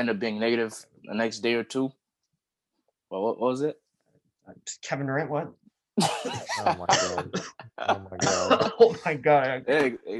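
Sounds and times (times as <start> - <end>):
speech: 0.0 - 2.0, 3.1 - 3.8, 4.5 - 10.1
person coughing with raspy voiced bursts: 6.0 - 9.1.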